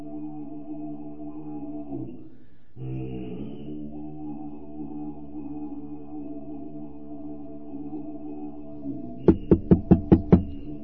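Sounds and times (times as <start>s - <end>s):
loud knocks on heavy wooden monastery gate door: 9.3s - 10.6s.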